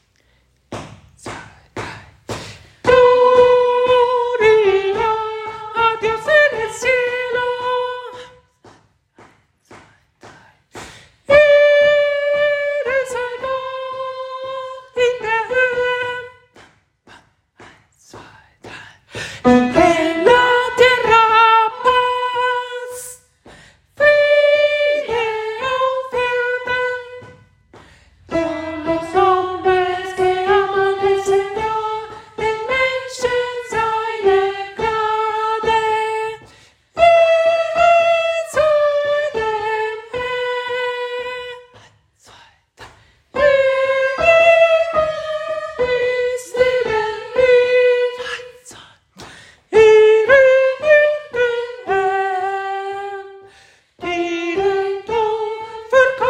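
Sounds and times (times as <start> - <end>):
soprano singing a Gloria: 2.8 - 8.4, 11.3 - 16.4, 19.4 - 23.2, 24.0 - 27.4, 28.3 - 41.8, 43.4 - 48.8, 49.7 - 56.2.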